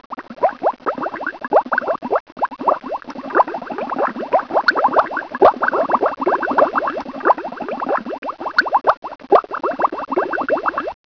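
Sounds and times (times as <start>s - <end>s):
bubble: 0.1s - 11.0s.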